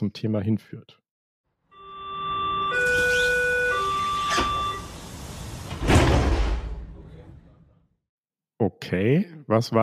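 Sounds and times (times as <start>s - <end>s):
speech: 0.0s - 1.0s, 8.6s - 9.8s
S-Bahn commuter train departure chime: 1.8s - 5.4s
S-Bahn train doors closing: 2.6s - 7.5s
hissy platform background: 3.1s - 7.8s
S-Bahn commuter train rumbling: 3.7s - 7.6s.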